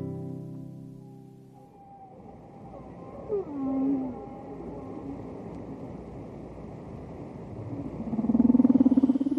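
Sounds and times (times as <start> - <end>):
whale calls: 0.9 - 5.5, 7.8 - 9.3.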